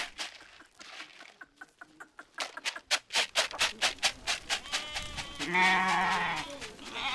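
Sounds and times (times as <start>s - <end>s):
fast rhythmic rattling: 0.0s - 7.1s
several goats bleating loudly: 4.5s - 7.1s.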